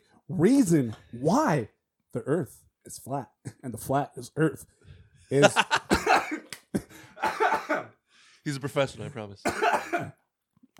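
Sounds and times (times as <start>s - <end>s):
speech: 0.3s - 6.5s, 7.2s - 10.2s
harsh coughs: 5.9s - 8.0s, 9.4s - 10.2s.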